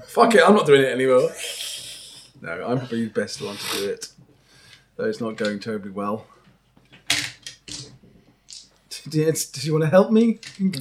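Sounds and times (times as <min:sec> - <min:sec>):
speech: 0:00.1 - 0:01.6, 0:02.4 - 0:04.3, 0:05.0 - 0:06.3, 0:09.1 - 0:10.7
handful of plastic dice being rolled: 0:07.1 - 0:07.9, 0:08.5 - 0:08.7.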